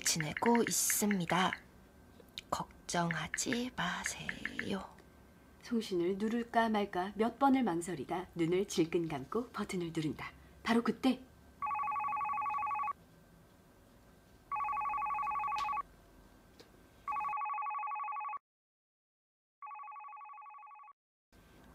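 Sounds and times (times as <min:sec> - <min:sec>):
speech: 0:00.0 - 0:01.7, 0:02.5 - 0:05.0, 0:05.6 - 0:11.3
telephone ringing with a warbling electronic tone: 0:11.6 - 0:13.0, 0:14.5 - 0:15.8, 0:17.1 - 0:18.4, 0:19.6 - 0:21.0.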